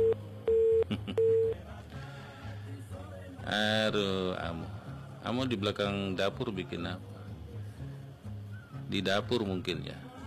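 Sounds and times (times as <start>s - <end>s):
mobile phone call tone beeps: 0.0s - 1.6s
speech: 3.5s - 7.1s, 8.9s - 10.1s.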